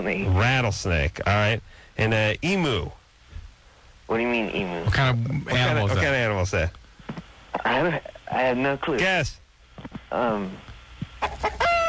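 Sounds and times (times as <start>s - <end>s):
speech: 0.0s - 3.0s, 4.1s - 6.8s, 7.6s - 11.8s
chicken clucking: 11.2s - 11.8s.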